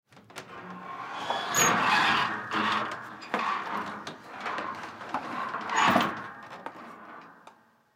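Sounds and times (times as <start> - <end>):
household attic door pulled down open: 0.3 - 7.4.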